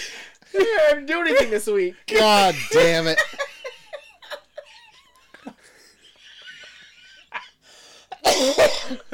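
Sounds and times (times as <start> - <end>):
laughter: 0.6 - 7.6
speech: 0.8 - 3.4
person coughing: 8.2 - 9.1.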